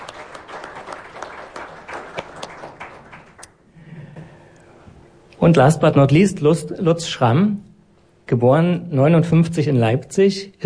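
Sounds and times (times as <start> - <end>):
audience applause: 0.0 - 3.5
speech: 5.4 - 7.7, 8.3 - 10.6.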